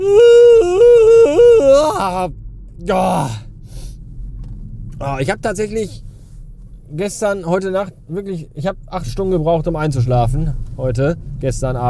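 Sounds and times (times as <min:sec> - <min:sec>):
long drawn-out human yawn: 0:00.0 - 0:02.3
speech: 0:02.1 - 0:03.4, 0:05.0 - 0:06.1, 0:06.9 - 0:11.8
breathy exhale: 0:03.6 - 0:04.1.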